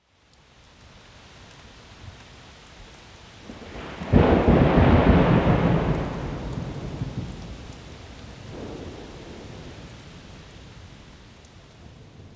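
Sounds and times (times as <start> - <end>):
thunderstorm: 3.5 - 10.5.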